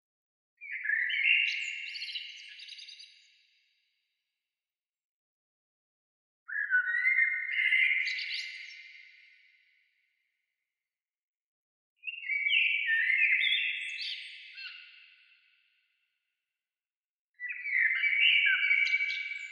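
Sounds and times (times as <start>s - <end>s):
bird singing twittering phrases: 0.6s - 3.4s, 6.5s - 9.1s, 12.0s - 15.3s, 17.4s - 19.5s.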